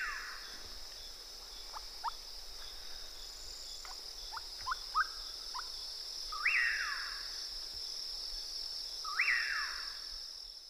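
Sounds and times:
continuous cricket-like buzzing: 0.0 - 10.6
Common Pauraque song: 3.8 - 5.7, 6.3 - 7.2, 9.1 - 9.9.

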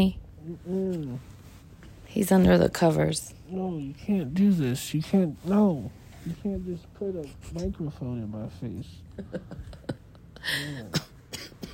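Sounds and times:
speech: 0.0 - 1.3, 2.1 - 9.8, 10.4 - 11.5
laughter: 9.1 - 10.9
short coughs: 10.4 - 11.7.

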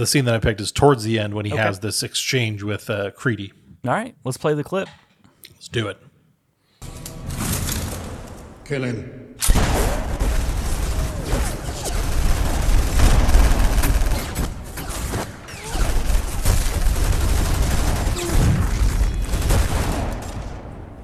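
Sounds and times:
speech: 0.0 - 5.0, 5.6 - 6.1, 8.7 - 9.6
explosions from a film clip: 9.4 - 21.0
gunfire from a film clip: 9.4 - 21.0.

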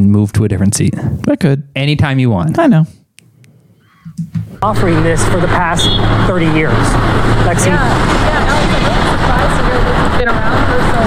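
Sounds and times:
speech: 0.0 - 3.0, 4.2 - 11.0
car traffic roar: 4.4 - 11.0
murmur of voices: 4.6 - 11.0.

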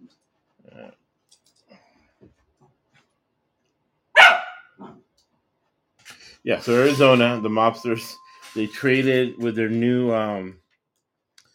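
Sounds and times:
dog barking excitedly: 4.2 - 5.0
speech: 6.4 - 10.6.

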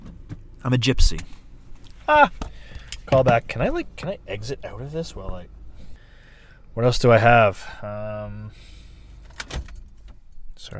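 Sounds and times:
car engine humming until switched off: 0.0 - 10.7
speech: 0.6 - 1.4, 2.1 - 2.5, 3.1 - 5.6, 6.8 - 8.8, 9.4 - 9.7, 10.6 - 10.7
set of keys jingling: 9.1 - 10.0.

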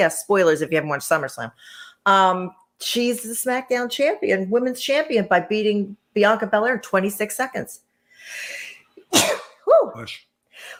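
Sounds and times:
speech: 0.0 - 10.7
sneeze: 9.1 - 9.7.

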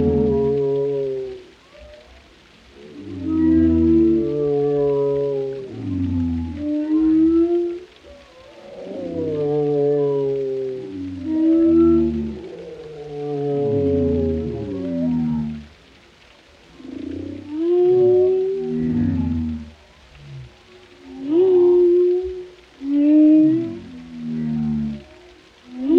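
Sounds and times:
whale song with rich layered moans: 0.0 - 15.7, 16.8 - 25.9.

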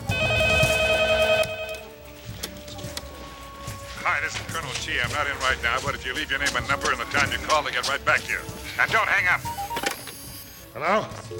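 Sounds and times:
cordless telephone ringing with electronic trill: 0.0 - 1.9
speech: 4.3 - 9.6, 10.8 - 11.3.

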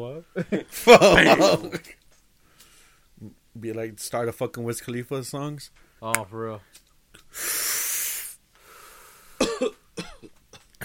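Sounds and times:
speech: 0.0 - 1.9, 3.6 - 7.8, 9.6 - 10.1
long breathy exhale: 7.3 - 9.4
short rough coughs: 9.4 - 10.8.

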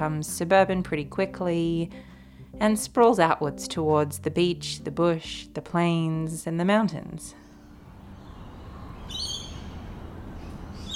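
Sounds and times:
speech: 0.0 - 7.4
steady low ambient hum: 7.2 - 10.9
birds calling from a back veranda in a leafy Sydney suburb: 7.3 - 10.9.

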